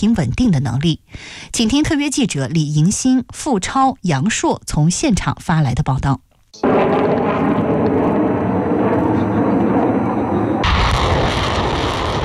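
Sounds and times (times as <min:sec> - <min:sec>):
speech: 0:00.0 - 0:06.7
long-range artillery and air strike fire: 0:06.6 - 0:09.7, 0:10.6 - 0:12.2.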